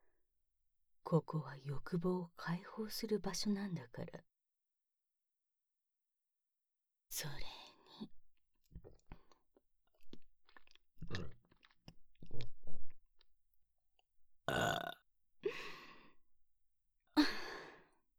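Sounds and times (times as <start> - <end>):
speech: 1.1 - 4.3, 7.2 - 8.2
burps from a carbonated drink: 11.0 - 11.7, 14.5 - 15.0.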